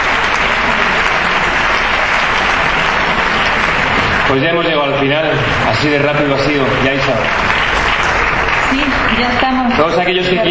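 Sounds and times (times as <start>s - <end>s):
large audience applause: 0.0s - 10.4s
speech: 4.3s - 7.7s, 8.7s - 10.4s.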